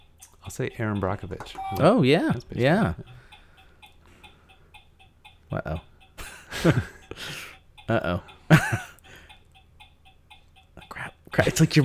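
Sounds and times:
game timer ticking: 0.0 - 11.8
speech: 0.4 - 3.2, 5.5 - 5.9, 6.6 - 8.9, 11.4 - 11.8
laughter: 0.4 - 4.6, 5.5 - 9.3, 10.8 - 11.8
breathy burst: 3.0 - 5.0, 5.8 - 9.5.

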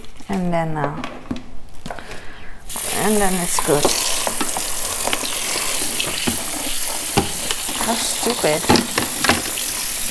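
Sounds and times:
speech: 0.3 - 1.2, 3.0 - 4.1, 7.9 - 9.1
tap water running while washing strawberries and raspberries: 2.7 - 10.0.

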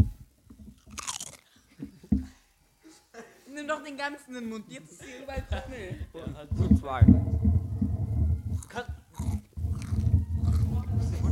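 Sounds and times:
potato chips being bitten and chewed: 0.8 - 1.5, 8.6 - 10.8
speech: 3.6 - 7.5, 8.7 - 9.0
mouth sounds: 8.5 - 11.3.

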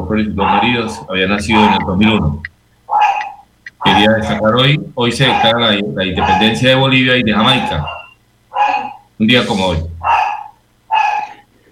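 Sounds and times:
speech: 0.1 - 2.5, 4.0 - 8.0, 9.2 - 9.9
small dog yapping: 0.4 - 4.4, 5.2 - 6.7, 7.4 - 9.1, 10.0 - 11.4.

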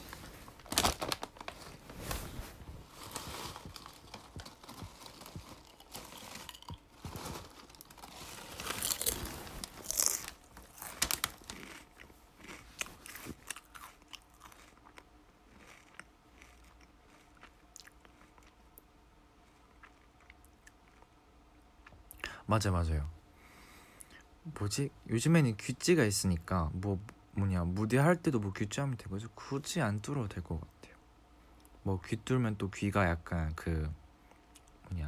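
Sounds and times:
crunching and chewing snacks: 0.6 - 1.7, 2.8 - 21.2
speech: 22.5 - 23.2, 24.6 - 30.8, 31.9 - 34.0.

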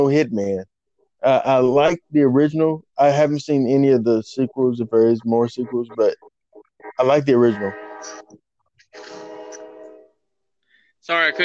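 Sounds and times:
speech: 0.0 - 6.3, 6.9 - 9.2, 11.0 - 11.4
train horn blaring on a passing train: 9.2 - 10.1.

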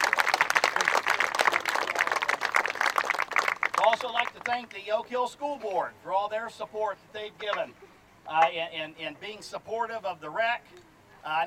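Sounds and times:
audience applauding for volunteer coaches: 0.0 - 4.8
speech: 4.0 - 11.4.

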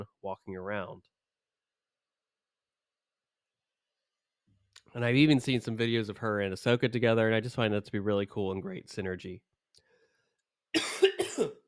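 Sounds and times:
speech: 0.0 - 1.2, 4.9 - 9.5
person coughing: 10.8 - 11.6.

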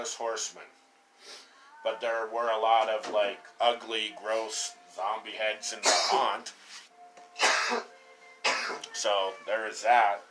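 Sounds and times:
speech: 0.0 - 6.8, 7.4 - 7.9, 8.7 - 10.2
short raspy cough: 5.8 - 6.4, 7.4 - 8.8.

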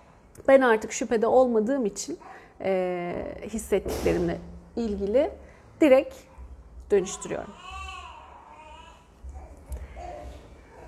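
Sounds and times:
speech: 0.5 - 6.3, 6.9 - 7.7
baby crying: 7.2 - 10.8.

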